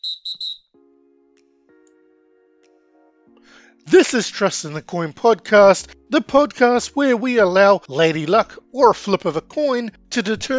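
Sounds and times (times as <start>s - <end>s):
shrill whistle blasts: 0.0s - 0.7s
speech: 3.9s - 10.5s.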